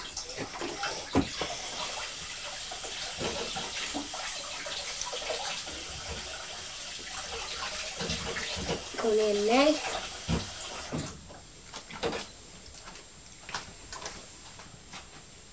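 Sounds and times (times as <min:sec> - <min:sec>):
tap water running into a kitchen sink: 0:00.0 - 0:12.2
speech: 0:09.1 - 0:09.9.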